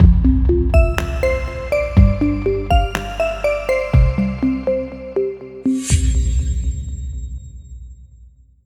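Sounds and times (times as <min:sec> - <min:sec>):
logo jingle: 0:00.8 - 0:06.4.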